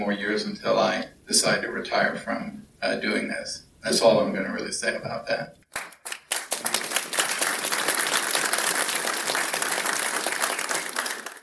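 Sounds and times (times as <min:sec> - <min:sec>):
speech: 0:00.0 - 0:05.7
crowd applauding: 0:05.8 - 0:11.4.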